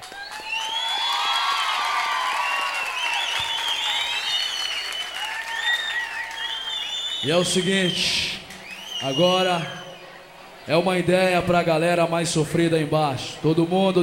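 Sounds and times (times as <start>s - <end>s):
audience applause at a live rap concert: 0.0s - 9.3s
high whistles from a live rap concert audience: 0.0s - 10.2s
audience cheering at a live rap concert: 0.0s - 11.8s
speech: 7.2s - 8.3s, 9.0s - 9.8s, 10.6s - 14.0s.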